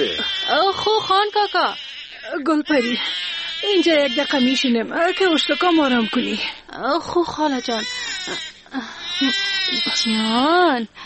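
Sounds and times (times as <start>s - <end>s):
infant wailing: 0.0s - 6.6s, 7.4s - 10.5s
speech: 0.8s - 11.0s.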